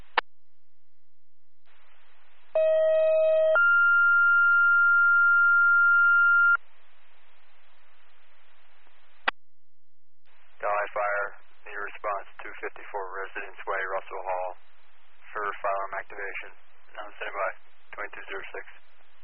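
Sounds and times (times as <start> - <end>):
fire dispatch alert tones over radio: 2.6 - 6.6
faint radio hiss: 10.3 - 19.2
speech: 12.6 - 14.7, 15.3 - 18.8.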